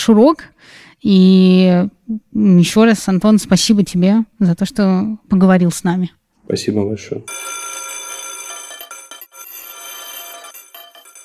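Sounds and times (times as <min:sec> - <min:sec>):
speech: 0:00.0 - 0:07.6
loud electric school bell ringing: 0:07.3 - 0:11.2.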